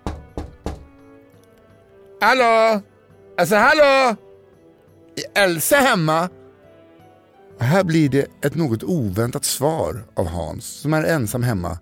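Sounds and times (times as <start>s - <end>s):
knocking on a window pane: 0.0s - 1.0s
speech: 2.2s - 4.3s, 5.2s - 6.4s, 7.6s - 11.8s.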